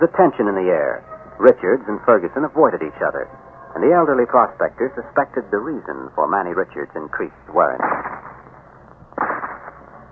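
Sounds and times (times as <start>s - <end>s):
speech: 0.0s - 8.1s
distant rifle shot from someone out hunting: 7.8s - 8.5s, 9.1s - 10.0s.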